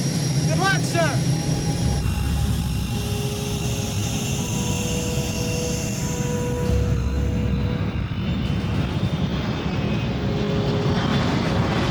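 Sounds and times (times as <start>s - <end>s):
Air Force One jet airplane engine roaring: 0.0s - 11.8s.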